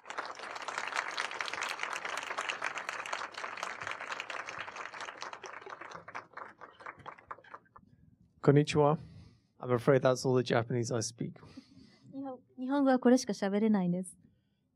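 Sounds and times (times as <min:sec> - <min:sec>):
audience applause from a sizable crowd welcoming guests: 0:00.0 - 0:07.8
speech: 0:08.4 - 0:11.6, 0:12.7 - 0:14.2.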